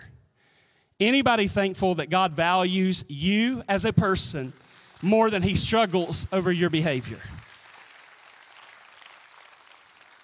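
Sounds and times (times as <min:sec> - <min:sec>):
speech: 0:01.0 - 0:07.4
sparse audience clapping: 0:04.3 - 0:10.2.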